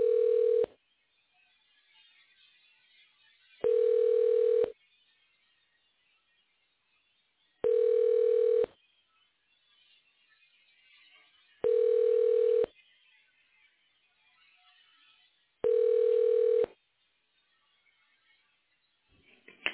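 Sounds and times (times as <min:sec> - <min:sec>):
telephone line beeps: 0:00.0 - 0:00.7, 0:03.6 - 0:04.7, 0:07.6 - 0:08.7, 0:11.6 - 0:12.7, 0:15.6 - 0:16.7.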